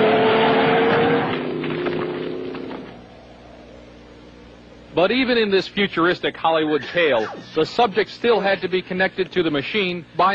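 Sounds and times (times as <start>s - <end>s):
loud truck engine roaring and straining on a wild ride: 0.0s - 4.6s
speech: 5.0s - 10.3s.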